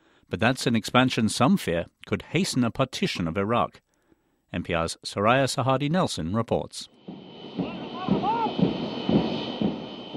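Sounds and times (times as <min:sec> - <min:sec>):
speech: 0:00.3 - 0:03.8, 0:04.5 - 0:06.9
jet airliner engine roaring and whining while landing: 0:06.9 - 0:10.1.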